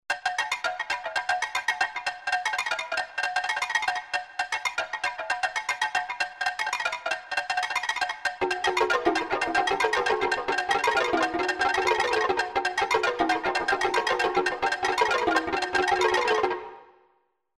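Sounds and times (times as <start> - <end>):
African ethnic percussion on Yamaha TG500 synthesizer: 0.1 - 17.0.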